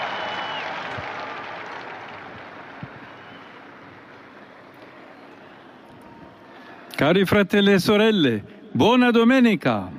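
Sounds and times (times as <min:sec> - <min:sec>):
large crowd applauding as the Pope appears on the Apostolic Palace: 0:00.0 - 0:03.8
speech: 0:07.0 - 0:09.9.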